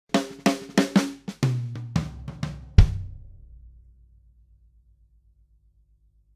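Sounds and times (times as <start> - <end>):
drum fill from a synthesizer: 0.1 - 3.7.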